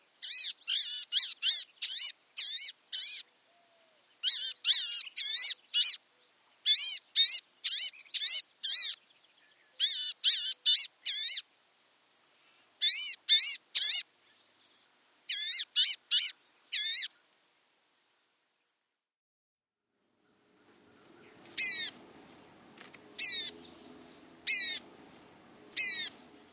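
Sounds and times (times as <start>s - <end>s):
blue-gray gnatcatcher calling: 0.2s - 11.5s, 12.8s - 14.0s, 15.3s - 17.2s, 20.6s - 26.5s.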